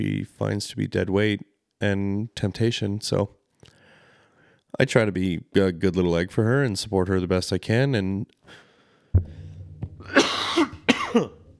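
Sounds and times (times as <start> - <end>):
speech: 0.0 - 3.4, 4.7 - 9.4, 10.0 - 10.4, 11.1 - 11.4
person with a frog in the throat clearing throat: 10.0 - 11.5
person with a frog in the throat coughing: 10.0 - 11.5.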